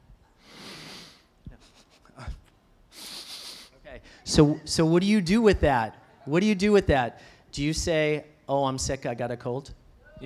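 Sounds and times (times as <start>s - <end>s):
person sniffing sharply through the nose: 0.4s - 3.8s
small snuffly breath noises: 0.4s - 4.4s
speech: 4.3s - 10.2s.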